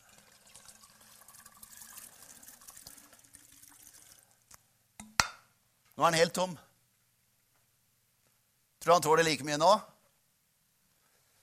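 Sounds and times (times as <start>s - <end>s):
contents pouring out of a bottle in a gurgling stream: 0.0s - 4.4s
speech: 6.0s - 6.7s, 8.8s - 9.9s.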